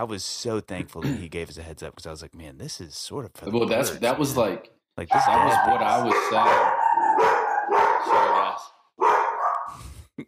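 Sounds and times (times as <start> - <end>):
speech: 0.0 - 6.8
large dog deep drawn-out bark: 5.1 - 9.7.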